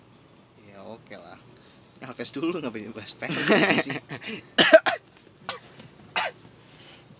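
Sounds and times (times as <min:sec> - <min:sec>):
speech: 0:00.8 - 0:04.8
laughter: 0:03.3 - 0:04.4
person coughing in harsh raspy bursts: 0:04.6 - 0:06.4.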